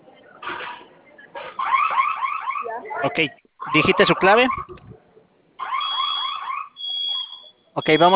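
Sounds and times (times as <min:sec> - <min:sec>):
home security electronic alarm wailing in rising sweeps: 0:01.6 - 0:04.8, 0:05.6 - 0:08.1
speech: 0:03.0 - 0:04.8, 0:07.8 - 0:08.1.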